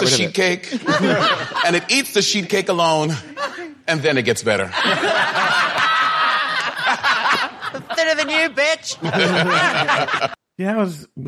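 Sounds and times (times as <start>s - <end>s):
crowd laughter and snickering of a sitcom laugh track: 0.0s - 1.9s, 4.7s - 10.4s
speech: 0.1s - 3.3s, 3.9s - 5.8s, 8.1s - 11.2s.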